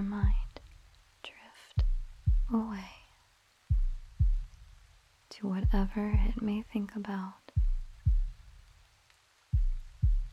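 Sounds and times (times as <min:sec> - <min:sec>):
deep heartbeat thuds: 0:00.0 - 0:00.6, 0:01.8 - 0:02.9, 0:03.7 - 0:04.8, 0:05.6 - 0:06.7, 0:07.5 - 0:08.6, 0:09.5 - 0:10.3
speech: 0:02.5 - 0:03.0, 0:05.4 - 0:07.4.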